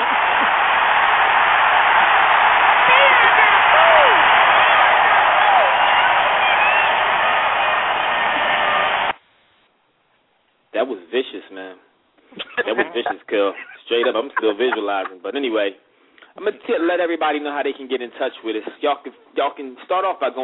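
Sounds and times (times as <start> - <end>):
laughter: 0.0 - 0.9, 12.3 - 15.4
large crowd cheering and applauding: 0.0 - 9.2
speech: 13.1 - 15.8, 16.4 - 20.4.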